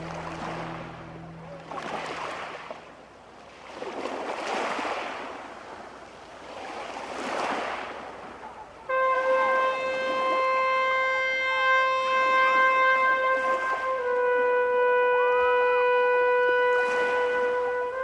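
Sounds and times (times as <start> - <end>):
brief tonal sound: 0.0 - 2.0
low hum: 0.0 - 2.3
sea water surging as a small boat is pushed in: 0.0 - 18.0.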